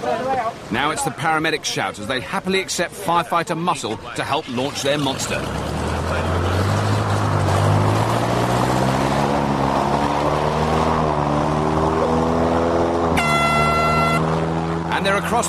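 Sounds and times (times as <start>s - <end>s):
speech: 0.0s - 6.2s, 15.2s - 15.4s
5.5-litre boat engine roaring upriver: 3.1s - 15.4s.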